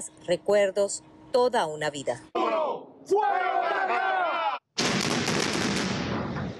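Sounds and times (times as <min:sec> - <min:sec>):
speech: 0:00.0 - 0:02.5, 0:03.1 - 0:04.2
voices shouting together: 0:02.4 - 0:04.6
loud explosive blast: 0:04.8 - 0:06.5.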